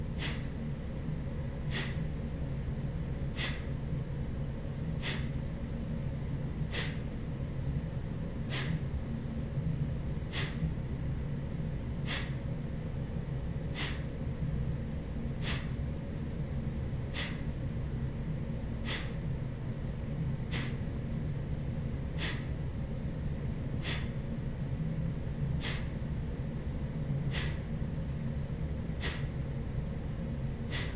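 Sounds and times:
constant low hum: 0.0 - 30.9
rapid forceful breaths in a breathing exercise: 0.2 - 0.5, 1.6 - 2.1, 3.3 - 3.7, 5.0 - 5.4, 6.6 - 7.1, 8.5 - 8.9, 10.3 - 10.7, 12.0 - 12.4, 13.7 - 14.1, 15.4 - 15.8, 17.1 - 17.5, 18.8 - 19.2, 20.5 - 20.8, 22.2 - 22.5, 23.8 - 24.2, 25.5 - 26.0, 27.3 - 27.7, 29.0 - 29.4, 30.7 - 30.9.

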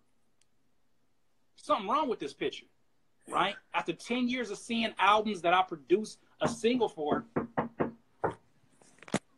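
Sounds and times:
speech: 1.6 - 7.3
knocking on a door: 6.4 - 8.4.

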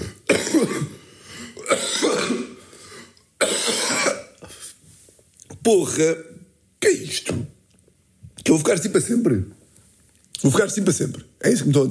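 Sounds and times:
harsh wet hacking coughs: 0.0 - 4.8
speech: 5.6 - 7.4, 8.5 - 9.6, 10.4 - 11.8.

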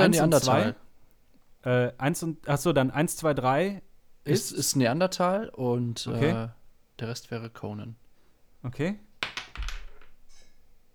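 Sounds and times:
speech: 0.0 - 0.8, 1.6 - 8.0, 8.6 - 9.3
small die clattering off a table and bouncing: 9.2 - 10.5.

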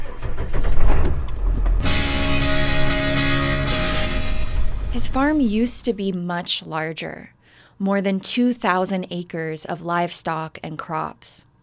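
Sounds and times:
pickup truck loaded with feed rumbling toward a farm: 0.0 - 5.8
speech: 5.0 - 11.5.

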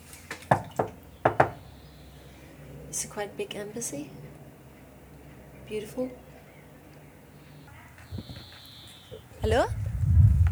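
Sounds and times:
speech: 0.5 - 0.8, 3.0 - 4.3, 5.7 - 6.2, 9.5 - 9.8
sharp knocks on a door at an embassy: 0.5 - 1.6.

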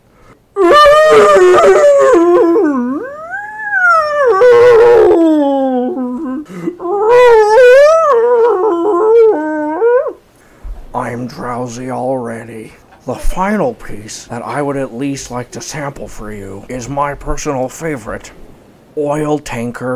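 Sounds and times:
whale crying out as it is caught by a larger whale: 0.6 - 10.2
speech: 11.7 - 18.4, 19.0 - 19.9.

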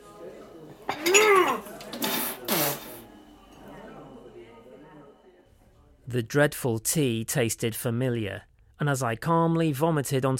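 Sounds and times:
cups clinking together in a toast: 0.9 - 3.0
speech: 6.1 - 10.3.

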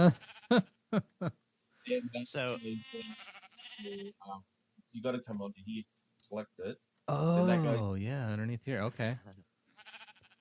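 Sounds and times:
sheep bleating while being sheared: 0.0 - 0.8, 2.4 - 4.3, 9.7 - 10.3
speech: 0.0 - 9.4.

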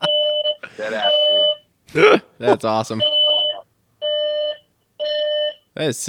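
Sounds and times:
hotel fire alarm blaring in harsh electronic tones: 0.0 - 1.6, 3.0 - 5.6
speech: 0.8 - 1.2, 1.9 - 3.2, 5.8 - 6.0.

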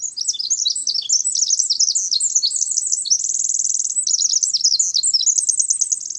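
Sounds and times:
Pacific Wren singing tumbling trills and twittering notes: 0.0 - 6.1.

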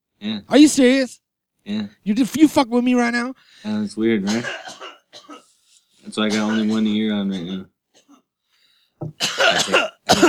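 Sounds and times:
speech: 0.2 - 4.8, 6.0 - 7.7, 9.0 - 10.2
person coughing: 4.3 - 5.5, 6.3 - 8.3, 9.2 - 10.2.

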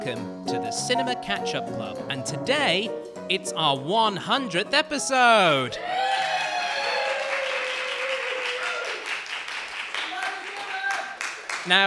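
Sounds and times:
speech: 0.0 - 6.0, 11.6 - 11.8
faint cheers: 5.8 - 9.1
live audience applauding and clapping: 5.9 - 11.8.

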